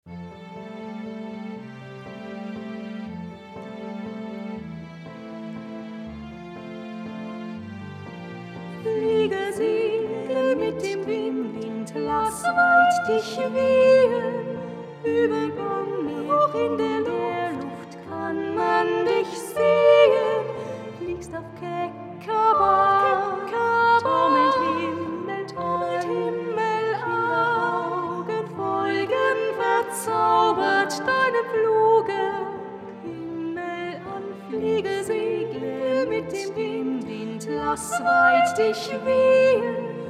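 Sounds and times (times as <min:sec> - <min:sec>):
soprano and alto singing together: 0:08.8 - 0:40.0.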